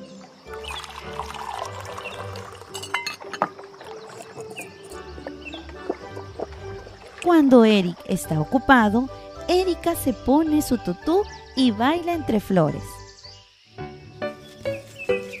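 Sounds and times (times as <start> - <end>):
tea poured with a steady trickle beside a river: 0.4 - 8.7
china cups clinking against each other: 0.5 - 7.8
speech: 7.2 - 13.0.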